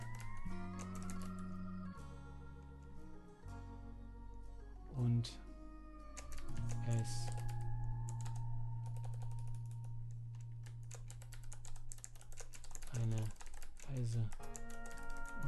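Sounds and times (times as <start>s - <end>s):
typing on a computer keyboard: 0.0s - 1.6s, 6.2s - 15.4s
low hum: 0.0s - 14.3s
speech: 5.0s - 5.5s, 6.9s - 7.4s.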